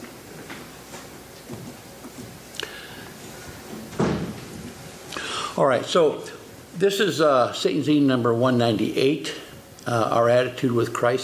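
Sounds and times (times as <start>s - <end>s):
church front door pushed shut with a solid thud: 3.9s - 4.5s
speech: 5.6s - 11.2s.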